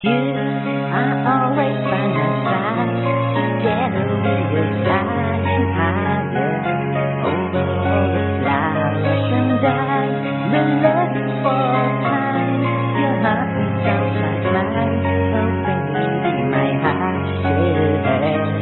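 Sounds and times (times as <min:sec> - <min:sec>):
piano playing: 0:00.0 - 0:18.5.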